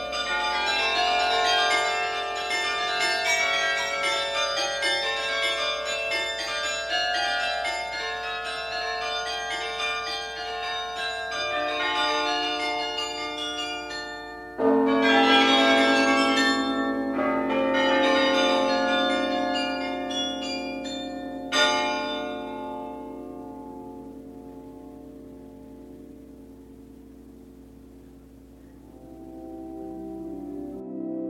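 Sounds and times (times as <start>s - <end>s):
church bells in Delft chiming: 0.0s - 31.1s.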